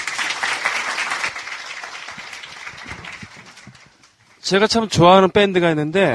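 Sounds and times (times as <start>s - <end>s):
crowd applauding: 0.0s - 4.7s
speech: 4.5s - 6.1s.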